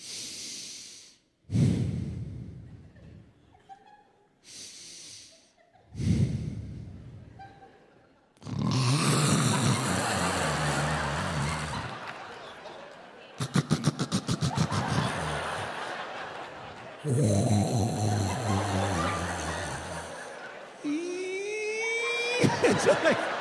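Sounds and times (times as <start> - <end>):
laughter: 2.7 - 4.4, 5.3 - 23.4
voice imitating loud snoring with snorts and breathy exhales: 8.4 - 12.1, 13.4 - 15.9, 17.0 - 21.7.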